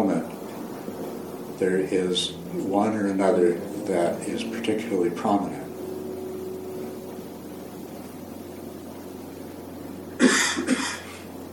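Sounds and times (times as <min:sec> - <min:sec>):
low steady hum in a quiet room: 0:00.0 - 0:11.5
speech: 0:01.6 - 0:05.6
person coughing: 0:10.2 - 0:11.2.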